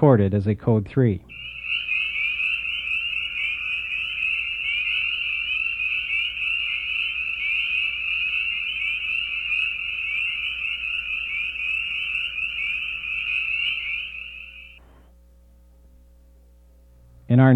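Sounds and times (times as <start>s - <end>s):
speech: 0.0s - 1.6s, 17.3s - 17.5s
chorus of spring peeper frogs: 1.3s - 14.8s.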